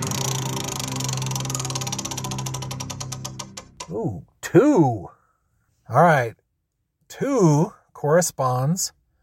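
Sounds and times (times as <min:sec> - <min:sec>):
spinning wheel ticking in a word game: 0:00.1 - 0:03.9
speech: 0:03.9 - 0:05.1, 0:05.9 - 0:06.4, 0:07.1 - 0:09.0.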